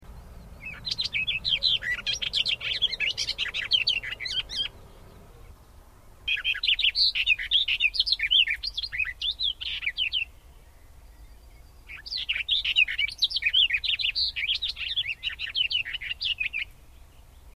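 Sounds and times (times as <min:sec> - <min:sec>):
barred warbler: 0:00.0 - 0:17.5.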